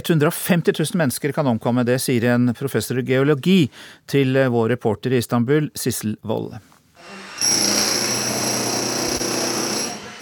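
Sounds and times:
speech: 0.0 - 6.7
power drill grinding into a concrete wall: 7.0 - 10.2.

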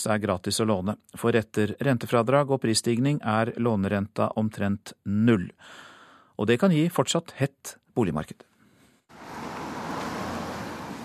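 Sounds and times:
speech: 0.0 - 8.5
cars passing continuously at a busy intersection: 9.1 - 11.0.

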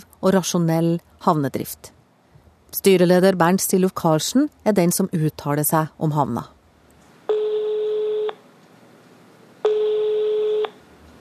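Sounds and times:
speech: 0.2 - 2.0, 2.7 - 6.6
electronic telephone ringback tones: 7.3 - 8.4, 9.6 - 10.8.

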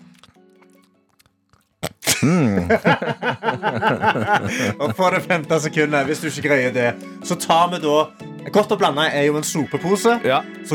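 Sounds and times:
person chewing a mouthful of jelly candies from a mixed candy bag: 0.0 - 2.6
laughter: 2.2 - 6.6
speech: 2.2 - 10.7.

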